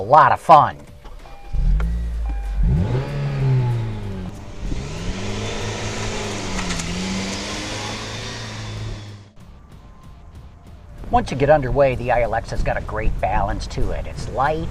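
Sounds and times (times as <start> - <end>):
speech: 0.1 - 0.8, 11.1 - 14.6
tire and wind noise: 1.0 - 9.3, 10.9 - 14.6
car engine revving while accelerating through gear changes: 1.0 - 9.4.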